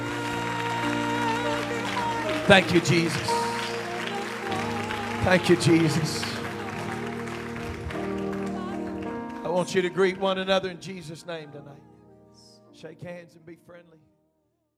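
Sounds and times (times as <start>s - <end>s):
audience applauding: 0.0s - 10.3s
speech: 2.5s - 3.3s, 5.2s - 6.2s, 9.6s - 11.9s, 12.8s - 14.1s.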